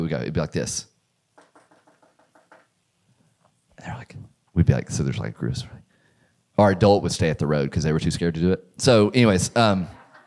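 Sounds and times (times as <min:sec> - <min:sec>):
speech: 0:00.1 - 0:00.9, 0:03.8 - 0:05.8, 0:06.6 - 0:10.0
knocking on a door: 0:01.4 - 0:02.7.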